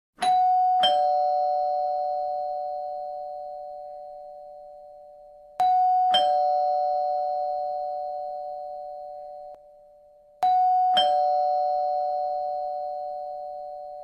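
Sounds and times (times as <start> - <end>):
classic doorbell: 0.2 - 14.0.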